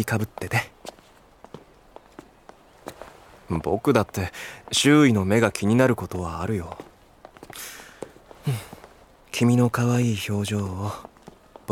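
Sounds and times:
speech: 0:00.0 - 0:00.7, 0:03.5 - 0:06.9, 0:07.5 - 0:07.8, 0:08.4 - 0:08.7, 0:09.4 - 0:11.1
low hush: 0:00.0 - 0:11.7
quick faint footsteps hurrying up a slope: 0:00.4 - 0:05.0, 0:06.6 - 0:09.0.

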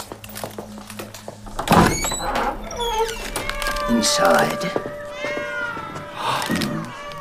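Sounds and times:
hundreds of white cats meowing in a cat room: 0:01.6 - 0:07.1
speech: 0:03.9 - 0:05.0.

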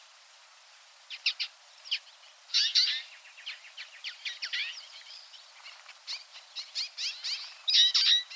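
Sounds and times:
Twite flock Acanthis flavirostris calling with twittering and buzzy chatter: 0:00.7 - 0:08.3.

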